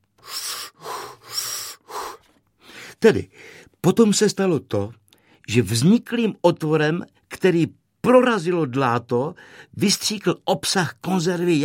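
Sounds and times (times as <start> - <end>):
man drawing deep audible breaths: 0.2 - 3.8, 9.4 - 9.7
speech: 3.0 - 11.6.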